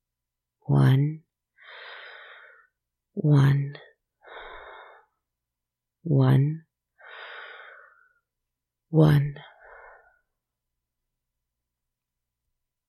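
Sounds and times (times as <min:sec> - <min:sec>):
speech: 0:00.7 - 0:01.2, 0:03.2 - 0:03.8, 0:08.9 - 0:09.2
slow breathing in and out: 0:01.5 - 0:02.8, 0:04.2 - 0:05.3, 0:07.0 - 0:08.3, 0:09.4 - 0:10.5.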